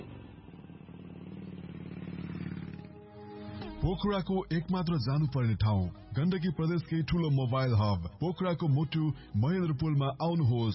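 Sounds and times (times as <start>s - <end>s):
motorcycle engine running: 0.0s - 3.5s
speech: 3.8s - 10.7s.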